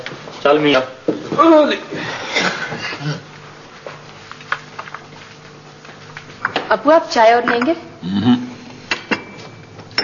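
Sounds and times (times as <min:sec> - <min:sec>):
faint hum: 0:00.0 - 0:10.0
speech: 0:00.4 - 0:03.2, 0:06.7 - 0:08.4
dishes knocking together while being cleaned: 0:07.4 - 0:07.8, 0:08.9 - 0:10.0.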